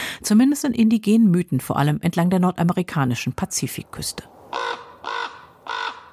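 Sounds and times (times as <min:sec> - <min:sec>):
speech: 0:00.2 - 0:05.2
raven cawing: 0:04.5 - 0:06.1.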